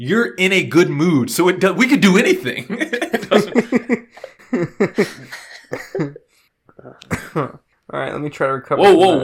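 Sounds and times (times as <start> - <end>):
speech: 0.0 - 5.2, 8.3 - 9.2
laughter: 2.5 - 6.4
person coughing in a harsh coughing fit: 5.0 - 6.2, 6.8 - 7.6
throat clearing: 6.8 - 7.6.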